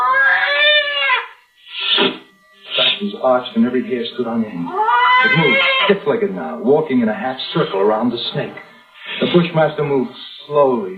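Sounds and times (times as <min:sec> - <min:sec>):
scrawny cat yowling: 0:00.0 - 0:01.4, 0:04.7 - 0:06.0
speech: 0:03.0 - 0:10.9.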